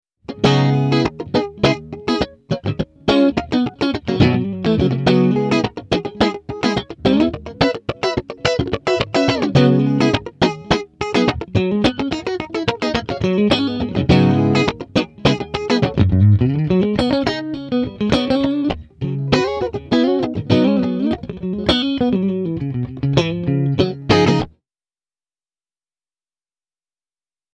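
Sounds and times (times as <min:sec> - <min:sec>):
clean mode chorus effect: 0:00.3 - 0:24.5.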